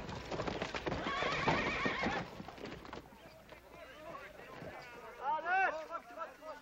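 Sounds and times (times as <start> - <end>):
hooves clip-clopping: 0.0 - 6.6
horse whinnying: 0.9 - 2.4.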